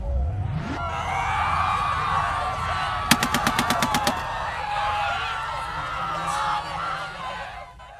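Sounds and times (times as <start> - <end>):
constant rumbling crowded din: 0.8 - 7.9
rapid burst of gunshots like automatic fire: 3.1 - 4.3.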